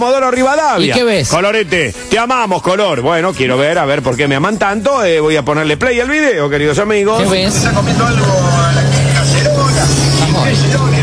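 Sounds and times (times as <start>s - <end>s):
speech: 0.0s - 8.7s, 10.4s - 10.9s
car engine hum: 7.1s - 11.0s
radio voice or music playing inside a car: 7.1s - 11.0s.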